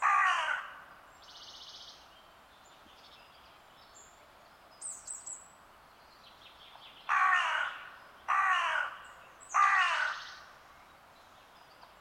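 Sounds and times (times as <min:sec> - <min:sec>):
Corvus corone cawing: 0:00.0 - 0:00.9, 0:07.1 - 0:10.4.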